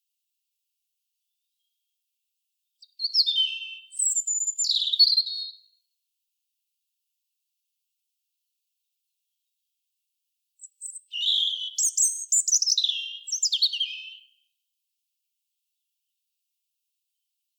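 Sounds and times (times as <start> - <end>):
European robin Erithacus rubecula singing: 2.8 - 5.7, 10.6 - 14.4.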